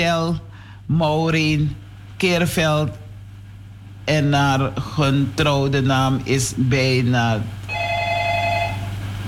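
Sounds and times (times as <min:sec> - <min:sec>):
speech: 0:00.0 - 0:03.0, 0:04.1 - 0:07.6
telephone ringing with an incoming call: 0:07.7 - 0:09.1.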